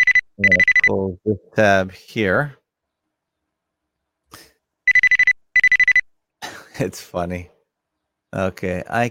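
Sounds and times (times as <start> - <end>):
computer ringtone for an incoming chat call: 0.0 - 1.0, 4.9 - 6.0
speech: 0.4 - 2.6, 6.8 - 7.5, 8.3 - 9.0.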